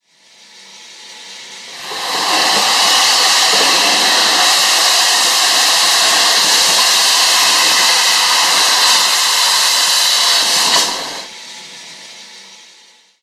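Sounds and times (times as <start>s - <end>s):
boiler blowdown: 1.5s - 11.4s.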